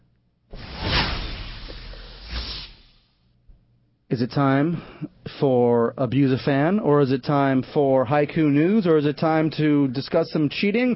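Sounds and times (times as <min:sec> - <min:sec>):
loud sweeping whoosh sound effect: 0:00.6 - 0:02.9
speech: 0:04.1 - 0:10.9.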